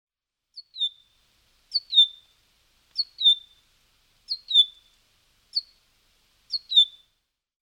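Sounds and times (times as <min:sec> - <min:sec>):
common chaffinch Fringilla coelebs calls: 0:00.6 - 0:02.3, 0:03.0 - 0:03.6, 0:04.3 - 0:04.9, 0:05.5 - 0:05.8, 0:06.5 - 0:07.0.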